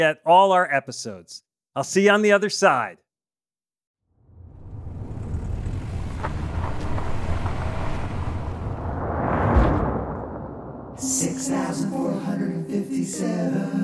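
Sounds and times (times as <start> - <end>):
speech: 0.0 - 3.0, 11.0 - 13.8
car approaching with low road rumble: 4.2 - 11.0.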